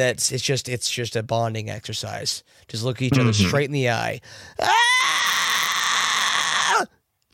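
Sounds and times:
speech: 0:00.0 - 0:04.9
person imitating a 1970s horror movie scream: 0:04.6 - 0:06.9.

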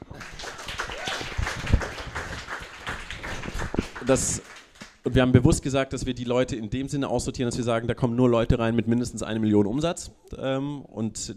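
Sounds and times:
small group clapping: 0:00.0 - 0:05.3
speech: 0:04.1 - 0:11.3.

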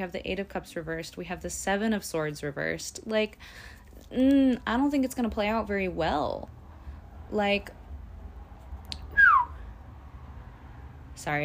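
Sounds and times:
speech: 0:00.0 - 0:06.6, 0:07.3 - 0:07.8, 0:11.2 - 0:11.4
person whistling a short clear downward-sliding note: 0:09.1 - 0:09.6.

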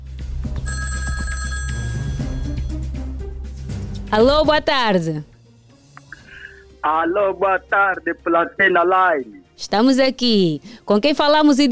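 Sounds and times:
telephone ringing as a listener calls in: 0:00.6 - 0:02.8
speech: 0:04.1 - 0:05.3, 0:06.8 - 0:11.7.

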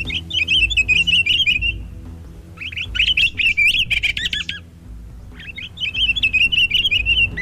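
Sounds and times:
low rumble: 0:00.0 - 0:07.4
pine grosbeak male singing: 0:00.0 - 0:07.4.

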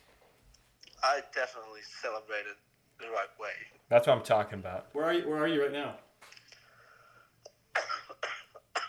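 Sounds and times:
speech: 0:01.0 - 0:06.1
person coughing harshly: 0:07.7 - 0:08.8.

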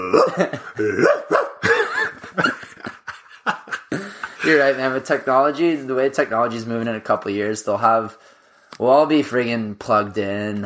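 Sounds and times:
human voice imitating a dog with bark-like yelps and whines: 0:00.0 - 0:01.6
laughter: 0:00.0 - 0:05.3
speech: 0:00.1 - 0:01.5, 0:04.5 - 0:10.6.

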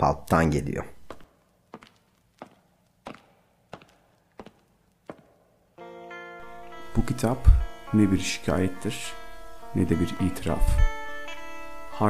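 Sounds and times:
speech: 0:00.0 - 0:01.0, 0:07.0 - 0:11.0
footsteps thudding at a walking pace: 0:00.7 - 0:05.7
sustained tonal music: 0:05.8 - 0:12.0.

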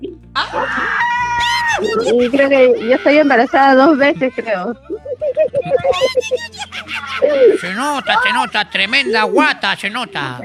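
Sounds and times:
several people screaming excitedly: 0:00.4 - 0:04.0, 0:05.8 - 0:09.6
laughter: 0:00.4 - 0:10.4
speech: 0:01.8 - 0:10.4.

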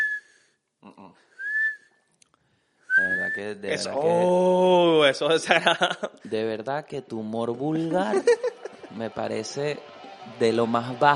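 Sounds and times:
voice imitating whistling of mucus in a blocked nose: 0:00.0 - 0:00.6, 0:01.3 - 0:02.1, 0:02.8 - 0:03.7
speech: 0:03.4 - 0:11.1
laughter: 0:05.4 - 0:06.2, 0:08.0 - 0:09.2.

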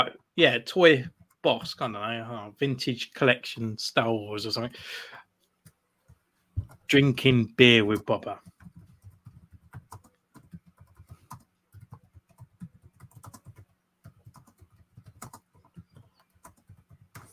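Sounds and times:
speech: 0:00.0 - 0:05.2, 0:06.9 - 0:08.5
typing on a computer keyboard: 0:07.9 - 0:17.3.

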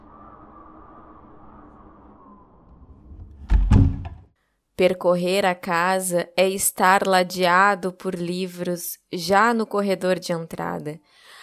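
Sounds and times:
wind rushing into the house: 0:00.0 - 0:04.2
house door opening with heavy wooden thunks: 0:03.4 - 0:04.3
speech: 0:04.8 - 0:11.2.

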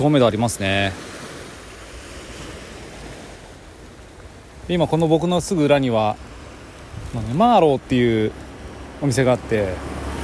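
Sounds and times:
speech: 0:00.0 - 0:01.2, 0:04.7 - 0:06.3, 0:07.1 - 0:08.4, 0:09.0 - 0:10.0
sea waves washing onto a Shonan shore in Japan: 0:00.0 - 0:10.2
wind buffeting the microphone: 0:01.2 - 0:08.9.

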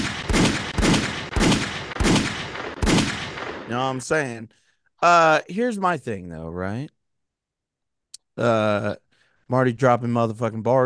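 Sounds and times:
rapid series of loud gunshots: 0:00.0 - 0:04.0
speech: 0:03.7 - 0:07.0, 0:08.4 - 0:10.8.

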